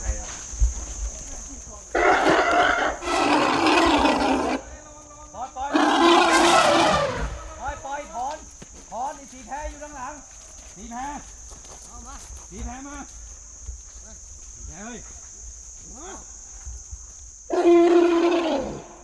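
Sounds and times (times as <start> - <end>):
restless young elephant trumpeting at a sanctuary: 2.0 - 4.7, 5.7 - 7.6, 17.5 - 19.0.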